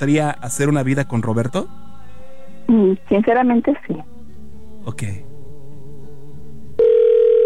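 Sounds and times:
speech: 0.0s - 1.8s, 2.7s - 4.1s, 4.8s - 5.3s
electronic telephone ring tone on a call line: 6.8s - 7.4s.

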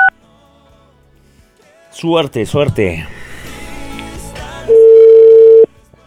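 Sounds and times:
speech: 2.0s - 3.2s
phone call diverted to voicemail beep tone: 4.7s - 5.7s.

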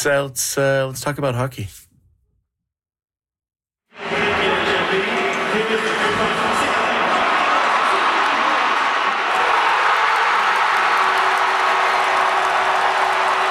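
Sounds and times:
speech: 0.0s - 1.9s
crowd of hockey fans roaring and cheering in an arena: 3.9s - 13.4s
applause from hockey fans: 6.4s - 13.4s
hockey fans shouting: 6.8s - 13.4s.

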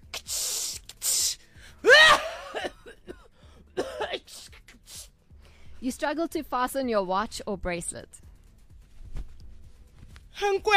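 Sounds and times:
perfume spray hissing: 0.1s - 1.4s
person coughing: 1.9s - 4.6s
speech: 5.8s - 8.2s, 10.4s - 10.7s.

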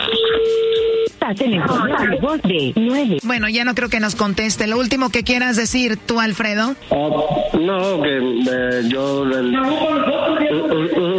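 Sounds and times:
long steady telephone tone while a number is dialed: 0.0s - 1.1s
speech: 1.3s - 11.1s.

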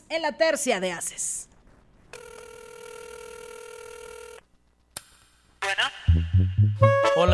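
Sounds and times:
speech: 0.1s - 1.5s, 5.8s - 7.3s
telephone ringing in a long electronic burst: 2.1s - 4.4s.

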